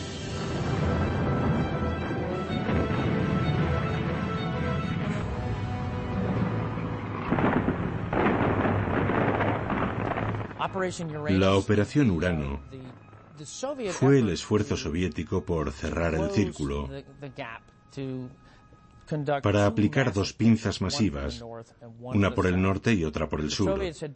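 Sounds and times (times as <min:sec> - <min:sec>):
distant artillery cannon fire: 0:00.6 - 0:11.4
speech: 0:10.6 - 0:18.5, 0:19.1 - 0:24.1.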